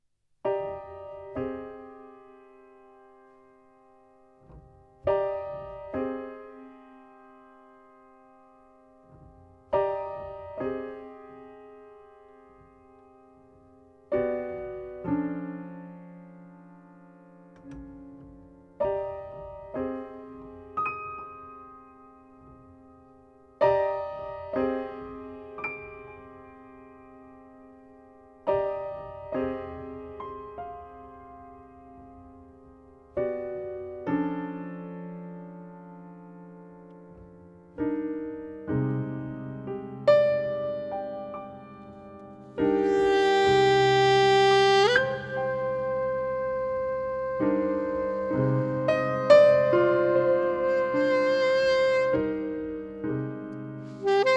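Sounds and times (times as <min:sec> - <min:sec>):
piano: 0:00.0 - 0:54.3
alto saxophone: 0:42.5 - 0:54.3.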